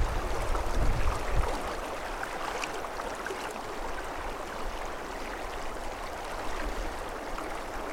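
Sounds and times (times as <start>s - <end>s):
water splashing and burbling: 0.0s - 4.0s
river water flowing: 0.0s - 7.9s.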